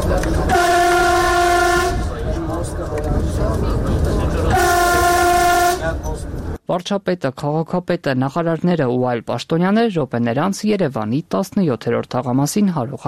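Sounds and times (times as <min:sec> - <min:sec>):
passenger train rumbling on a new Armenian rail line: 0:00.0 - 0:06.6
passenger train horn blasts on a new Armenian rail line: 0:00.4 - 0:02.1, 0:04.5 - 0:06.1
speech: 0:06.7 - 0:13.0.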